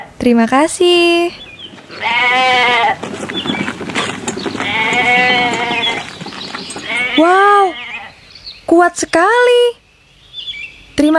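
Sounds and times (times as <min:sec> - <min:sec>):
speech: 0:00.2 - 0:03.5, 0:07.2 - 0:07.5, 0:08.7 - 0:09.8
rustling and shuffling: 0:00.8 - 0:07.7
sheep bleating at a well: 0:01.6 - 0:08.2.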